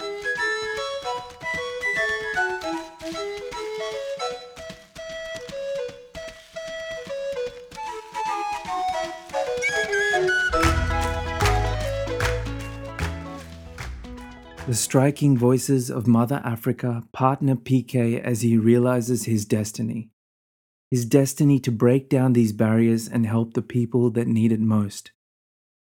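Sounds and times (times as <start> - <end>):
bright penny whistle melody: 0.0 - 13.7
band with deep bass and percussion: 10.5 - 14.8
speech: 14.7 - 20.2, 20.9 - 25.2.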